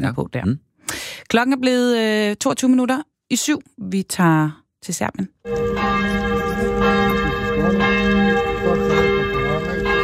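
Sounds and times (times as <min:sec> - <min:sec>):
speech: 0:00.0 - 0:00.7, 0:01.3 - 0:08.0
church bells in Serbia pealing: 0:05.5 - 0:10.0.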